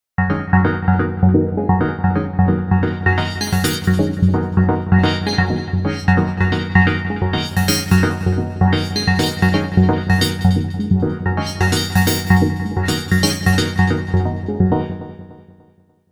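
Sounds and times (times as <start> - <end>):
digital and sine wave synthesizer models with filter and resonator modulation: 0.7 - 15.2.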